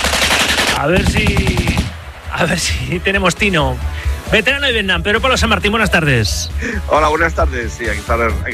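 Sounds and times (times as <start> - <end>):
rapid continuous machine gun fire: 0.0 - 2.3
speech: 0.8 - 1.6, 2.4 - 8.5.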